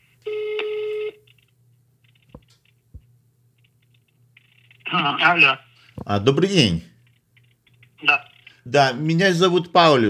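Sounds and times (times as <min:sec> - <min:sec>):
telephone ringback tone on an outgoing call to Russia: 0:00.2 - 0:01.2
speech: 0:04.9 - 0:06.9, 0:08.7 - 0:10.0.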